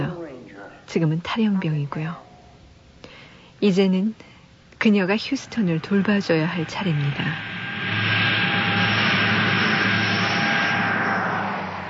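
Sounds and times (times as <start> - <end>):
speech: 0.9 - 2.2, 3.6 - 7.5
engine roar inside a private airplane cabin: 5.1 - 11.8.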